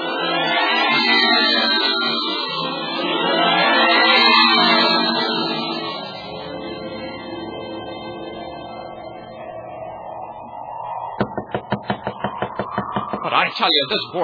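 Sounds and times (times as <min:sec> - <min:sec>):
sustained droning music: 0:00.0 - 0:14.2
firm knocking on a door: 0:11.2 - 0:13.3
speech: 0:13.6 - 0:14.2.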